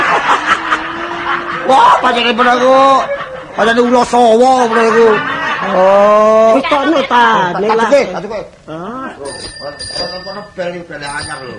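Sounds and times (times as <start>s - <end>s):
laughter: 0.0s - 7.4s
speech: 1.7s - 11.5s
new bicycle bell ringing: 9.2s - 11.5s.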